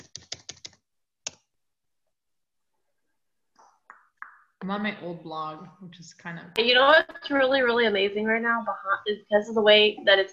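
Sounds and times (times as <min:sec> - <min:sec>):
typing on a computer keyboard: 0:00.0 - 0:01.4
speech: 0:04.6 - 0:10.3.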